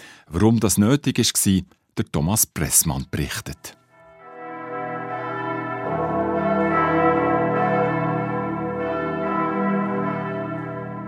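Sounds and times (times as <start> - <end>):
speech: 0.3 - 3.8
seven bells of Bern Minster ringing together in the tower: 4.0 - 11.0.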